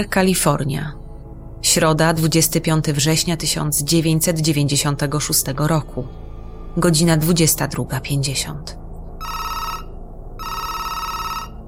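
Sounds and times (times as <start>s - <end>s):
speech: 0.0s - 1.0s, 1.6s - 9.5s
telephone ringing with trilling electronic rings: 9.2s - 11.6s.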